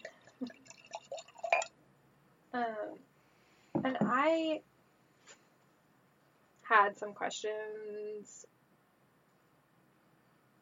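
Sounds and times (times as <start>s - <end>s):
glass clinking: 0.0s - 1.7s
liquid trickling: 0.0s - 1.8s
wine pouring into a glass: 0.0s - 1.8s
speech: 3.9s - 4.7s, 6.7s - 8.6s.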